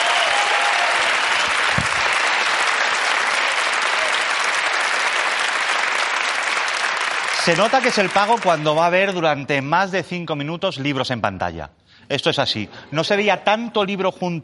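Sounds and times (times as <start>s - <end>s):
studio audience applause: 0.0s - 9.2s
speech: 7.4s - 14.4s.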